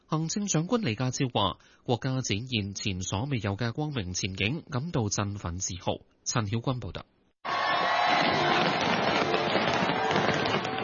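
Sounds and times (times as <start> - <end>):
speech: 0.1 - 7.2
fireworks bursting over Victoria Harbour in Hong Kong: 8.0 - 10.8.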